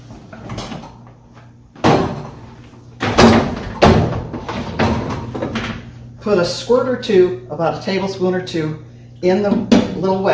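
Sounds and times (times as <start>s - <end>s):
dishwasher door closing with thumps and clunks: 1.8s - 2.4s, 3.0s - 5.8s
speech: 6.2s - 10.3s.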